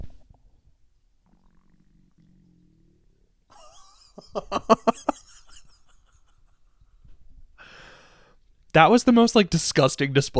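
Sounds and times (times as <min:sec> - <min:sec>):
stomach growling: 0:01.2 - 0:03.4
laughter: 0:03.5 - 0:06.5
speech: 0:04.2 - 0:04.9, 0:08.8 - 0:10.3.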